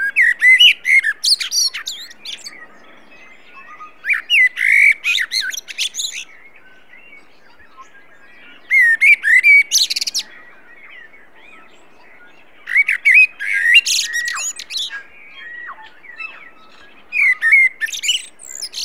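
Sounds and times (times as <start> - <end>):
common blackbird Turdus merula singing: 0.0 - 18.8.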